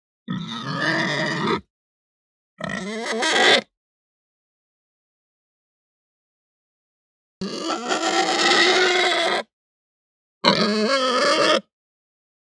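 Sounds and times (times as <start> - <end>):
Hampshire pig squealing harshly: 0.3 - 1.7, 2.6 - 3.7, 7.4 - 9.5, 10.4 - 11.7.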